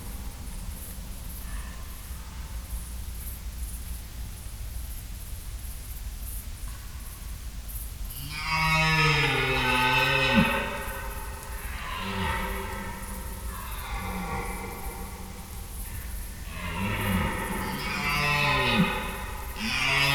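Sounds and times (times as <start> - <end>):
red deer stags roaring during the rut in Schönbuch near Tübingen, Germany: 8.3 - 20.1.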